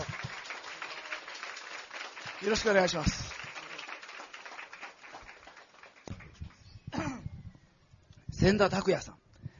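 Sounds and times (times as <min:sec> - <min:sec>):
audience applause: 0:00.0 - 0:06.6
speech: 0:02.4 - 0:03.4, 0:08.4 - 0:09.2.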